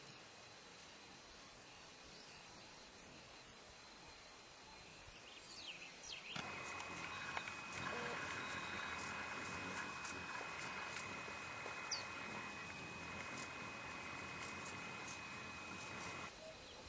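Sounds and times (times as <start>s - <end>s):
blue straight-billed bird singing: 4.9s - 16.8s.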